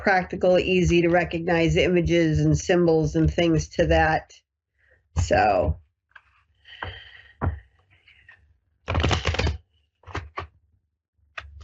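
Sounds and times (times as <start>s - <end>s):
speech: 0.0s - 4.4s, 5.2s - 5.8s
cards shuffling: 8.9s - 10.5s.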